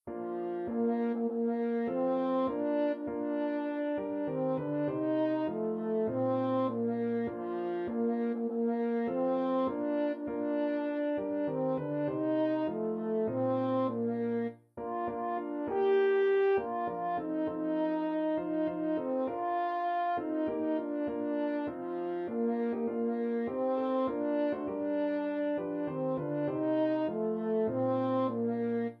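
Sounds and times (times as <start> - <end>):
french horn: 0.1 - 28.9.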